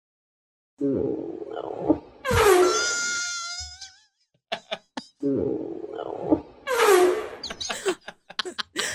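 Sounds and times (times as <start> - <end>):
speech: 0.8 - 2.0
long brassy fart: 2.2 - 3.2, 6.7 - 7.4
laughter: 4.5 - 5.1, 7.4 - 8.9.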